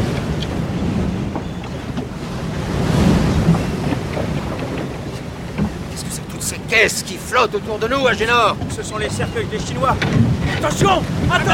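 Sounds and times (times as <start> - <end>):
sea waves surging: 0.0 - 11.5
wind noise: 0.0 - 11.5
speech: 6.7 - 11.5.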